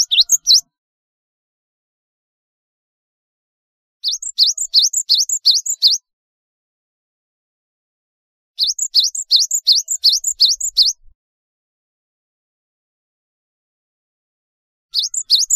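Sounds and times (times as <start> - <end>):
Java sparrow singing rapid bright chirps: 0.0 - 0.7, 4.0 - 6.0, 8.6 - 11.1, 14.9 - 15.5.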